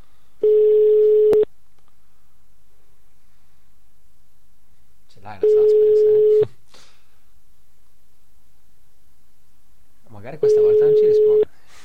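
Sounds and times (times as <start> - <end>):
telephone ringback tone on an outgoing call: 0.4 - 1.5, 5.4 - 6.5, 10.5 - 11.4.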